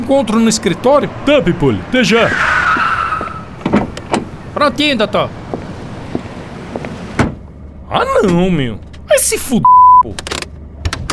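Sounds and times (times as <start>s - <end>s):
car tire squealing at a restaurant entrance: 0.0s - 7.2s
car clunks and bumps: 0.0s - 9.3s, 10.1s - 11.1s
speech: 0.1s - 2.6s, 4.6s - 5.4s, 7.9s - 10.3s.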